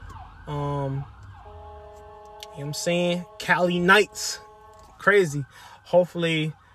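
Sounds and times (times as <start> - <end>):
ambulance siren passing by: 0.0 - 6.7
low rumble of traffic: 0.0 - 6.7
speech: 2.6 - 6.6.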